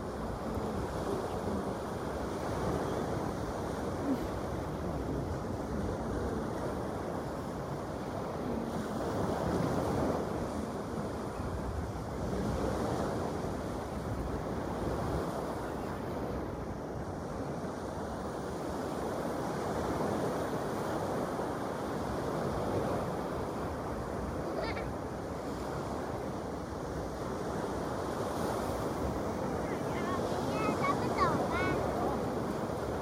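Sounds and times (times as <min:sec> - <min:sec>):
ocean waves: 0:00.0 - 0:33.0.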